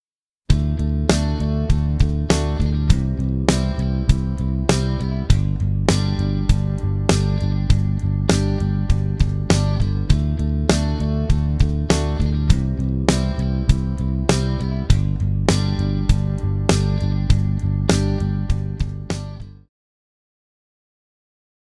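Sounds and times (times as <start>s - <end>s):
major chord progression V IV I: 0.5s - 19.6s.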